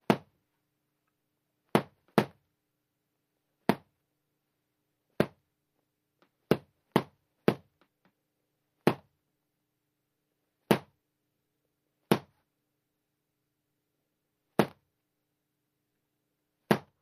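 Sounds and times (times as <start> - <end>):
boxing gloves hitting: 0.0 - 0.3, 1.7 - 2.4, 3.7 - 3.9, 5.2 - 5.4, 6.5 - 7.8, 8.8 - 9.1, 10.7 - 11.0, 12.1 - 12.4, 14.6 - 14.8, 16.7 - 17.0.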